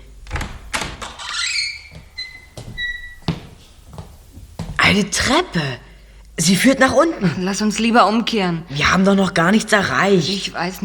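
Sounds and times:
door creaking open with squealing hinges: 0:00.0 - 0:03.6
speech: 0:04.9 - 0:10.8.

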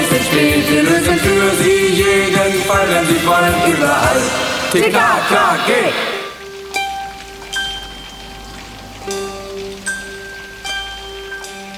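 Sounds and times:
first heavy raindrops falling over a large city: 0:00.0 - 0:11.7
faint sustained tones: 0:00.4 - 0:06.6
speech: 0:02.9 - 0:06.2.

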